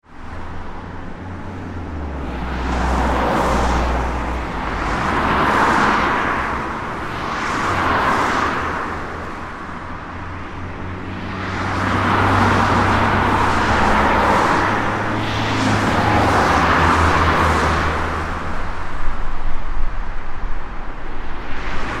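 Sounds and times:
traffic on main road at approx 40 mph on wet road surface: 0.0 - 21.9.

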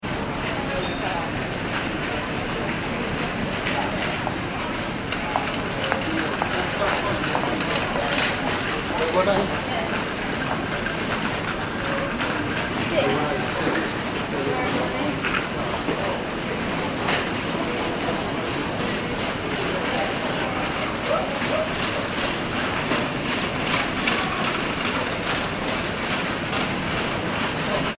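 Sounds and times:
airport baggage reclaim ambience at London Heathrow Airport: 0.4 - 27.9.

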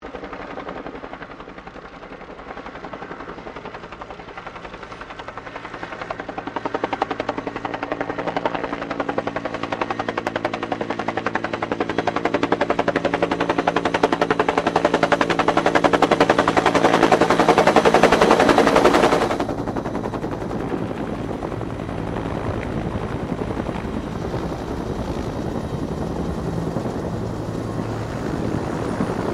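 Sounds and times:
1967 Bell UH-1 Iroquois helicopter approaching: 0.0 - 29.3.

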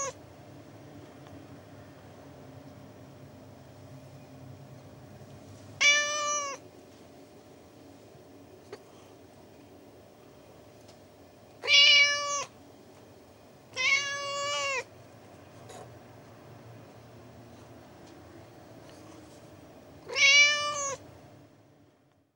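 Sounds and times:
Persian cat meowing: 5.8 - 6.6, 11.6 - 12.6, 13.7 - 14.9, 20.0 - 21.0.

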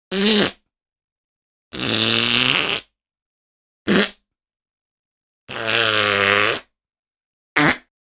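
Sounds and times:
whoopee cushion farting: 0.1 - 0.6, 1.7 - 2.9, 3.9 - 4.2, 5.5 - 6.7, 7.6 - 7.9.

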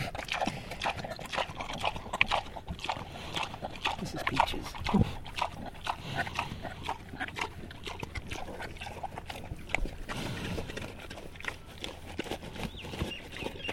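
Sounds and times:
Landrace pig chewing and smacking while eating peaches: 0.0 - 13.7.

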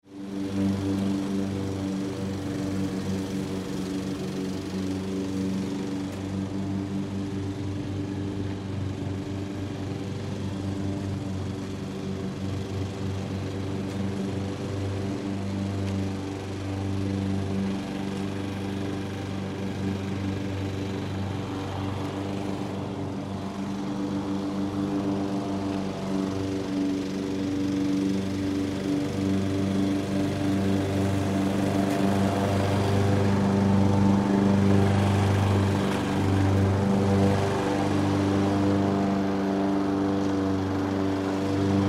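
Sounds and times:
distant landscaping lawn mowers on a golf course in a city subdivision: 0.0 - 41.8.

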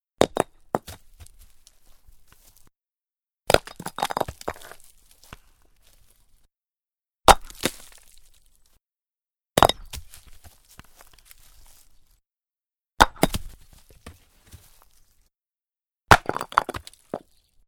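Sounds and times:
stone impacts with pile of rocks, tumbling and settling: 0.2 - 2.7, 3.5 - 6.4, 7.3 - 8.8, 9.6 - 12.1, 13.0 - 15.2, 16.1 - 17.5.

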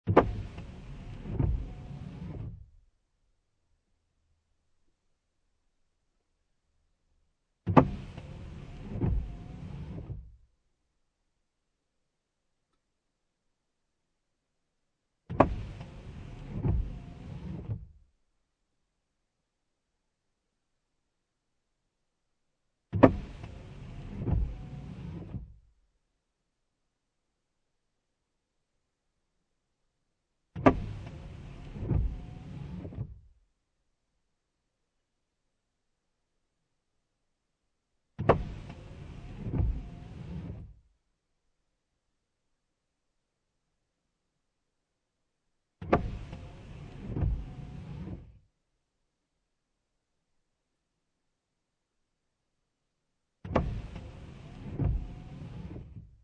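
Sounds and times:
car interior windshield wipers on low: 0.1 - 2.7, 7.6 - 10.3, 15.3 - 17.9, 22.9 - 25.5, 30.6 - 33.3, 38.2 - 40.8, 45.8 - 48.4, 53.4 - 56.2.

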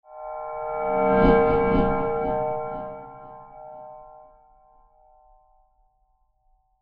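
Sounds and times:
mysterious metal transition with delays: 0.1 - 4.4.

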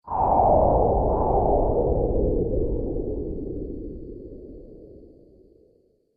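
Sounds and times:
astral winds science fiction sound effect: 0.1 - 5.0.

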